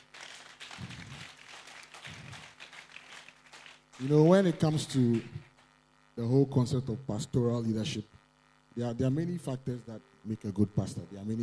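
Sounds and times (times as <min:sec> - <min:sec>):
crowd clapping in a room: 0:00.0 - 0:05.8
speech: 0:04.0 - 0:05.4, 0:06.2 - 0:08.2, 0:08.8 - 0:11.4.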